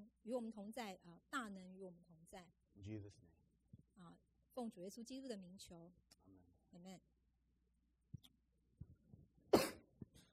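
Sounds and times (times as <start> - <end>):
speech: 0.2 - 3.4, 4.0 - 7.1
harsh cough: 9.6 - 9.9.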